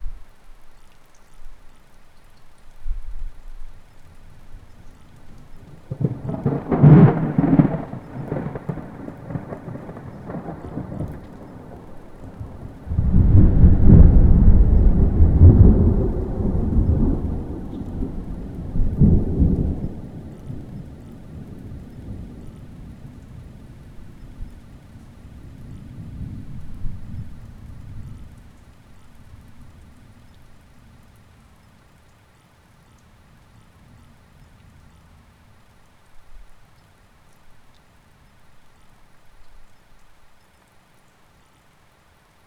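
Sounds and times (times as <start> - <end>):
thunder over an open field: 5.6 - 23.1.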